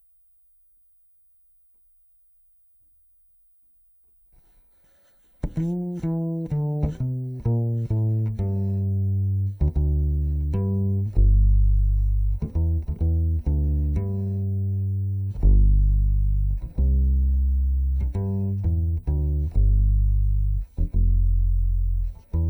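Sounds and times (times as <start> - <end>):
contrabass recorded direct input: 5.4 - 22.4.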